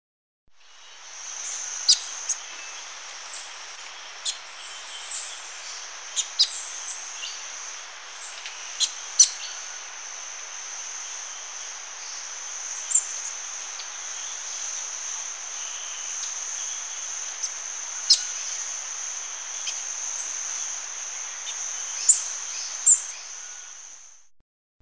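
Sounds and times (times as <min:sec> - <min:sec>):
metallic-green tanager calling in Ecuador: 0:00.6 - 0:24.1.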